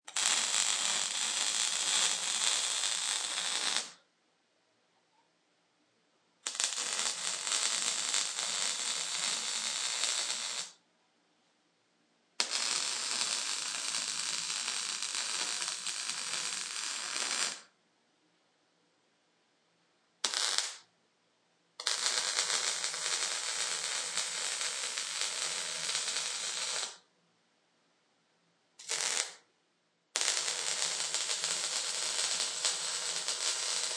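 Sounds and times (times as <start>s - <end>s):
multiple welding torch sounds: 0.0s - 4.0s, 6.4s - 10.8s, 12.4s - 17.7s, 20.2s - 20.8s, 21.8s - 27.0s, 28.8s - 29.4s, 30.2s - 33.9s.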